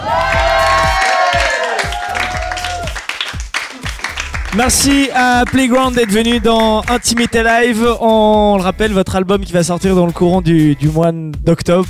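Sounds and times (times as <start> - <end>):
audience cheering and whooping: 0.0 - 5.8
audience clapping: 0.0 - 8.0
speech: 4.6 - 11.8.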